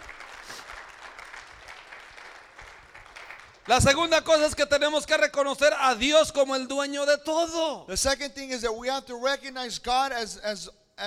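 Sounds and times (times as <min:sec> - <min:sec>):
church congregation applauding: 0:00.0 - 0:04.8
speech: 0:03.7 - 0:11.0.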